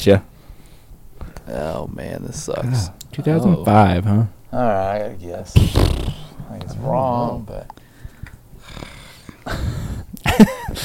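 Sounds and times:
speech: 0.0 - 0.3, 1.5 - 7.8, 9.5 - 10.8
frustrated growling into a microphone: 5.6 - 7.1.

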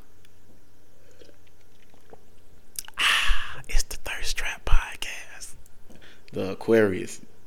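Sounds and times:
person sipping a drink: 0.9 - 6.1
speech: 6.3 - 7.3.

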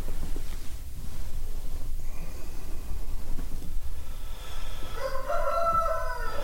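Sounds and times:
outdoor farmyard hiss: 0.0 - 6.4
rooster crowing in farmyard at dawn: 4.8 - 6.4.

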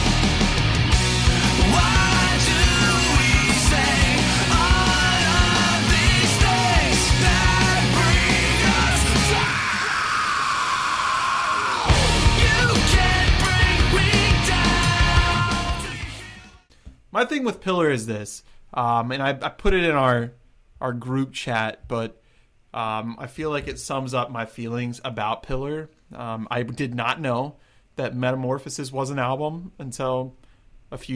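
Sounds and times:
loud distorted rock music: 0.0 - 16.7
rock singer yelling and letting out a long raw scream: 1.3 - 16.5
speech: 17.2 - 22.2, 22.8 - 31.1.

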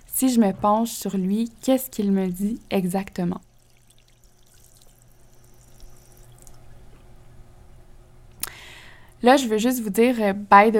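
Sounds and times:
faint trickling water in a bathroom: 0.0 - 6.8
low steady hum in a bathroom: 0.0 - 10.7
speech: 0.2 - 3.5, 9.2 - 10.7.

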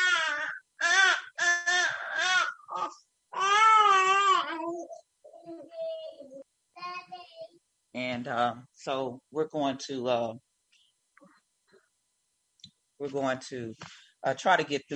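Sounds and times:
newborn baby crying: 0.0 - 5.0
speech: 8.2 - 10.5, 13.0 - 14.9.

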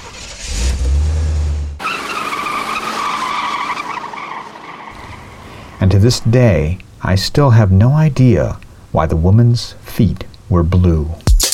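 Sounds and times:
car engine accelerating away: 0.0 - 6.2
faint tire squeal of an accelerating car: 0.0 - 6.6
speech: 5.8 - 11.2.

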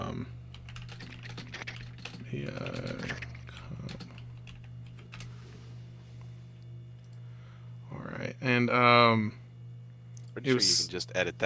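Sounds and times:
steady low hum: 0.0 - 11.4
typing on a computer keyboard: 0.5 - 5.3
speech: 8.5 - 9.4, 10.4 - 11.4.

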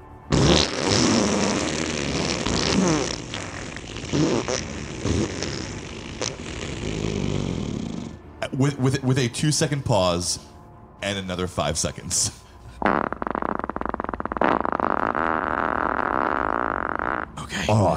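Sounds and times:
long fart noise: 0.0 - 8.3, 12.7 - 17.5
speech: 8.5 - 10.5, 11.2 - 12.4.

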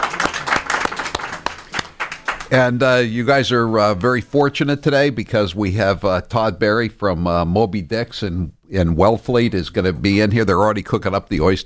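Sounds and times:
studio audience applause: 0.0 - 2.5
studio audience crowd noise: 0.0 - 2.5
speech: 2.5 - 11.6.

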